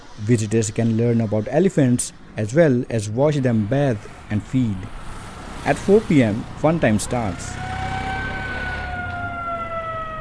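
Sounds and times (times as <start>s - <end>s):
speech: 0.2s - 5.0s, 5.6s - 7.7s
siren blown outside an elephant orphanage to stop traffic: 7.2s - 10.2s.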